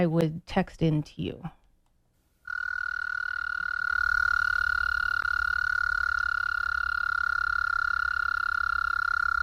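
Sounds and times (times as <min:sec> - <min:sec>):
speech: 0:00.0 - 0:01.6
American toad trilling call: 0:02.5 - 0:09.4.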